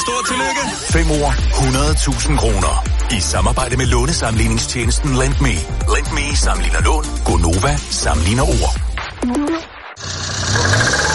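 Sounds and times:
speech: 0.0s - 10.2s
faulty car engine sputtering and rattling: 10.0s - 11.1s.

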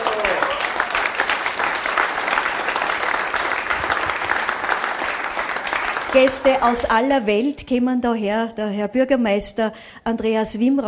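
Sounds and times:
audience applause at a celebration in a traditional Austrian-style hotel: 0.0s - 6.9s
speech: 6.2s - 10.8s.

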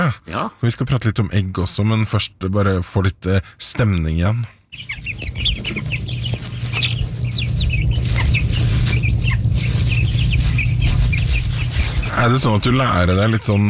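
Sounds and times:
speech: 0.1s - 5.5s, 12.2s - 13.6s
many small contented chicks peeping while foraging in a hen yard: 4.7s - 13.6s
steady low hum: 4.9s - 13.6s.

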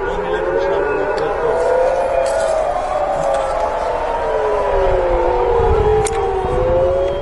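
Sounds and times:
air raid sirens wailing: 0.0s - 7.2s.

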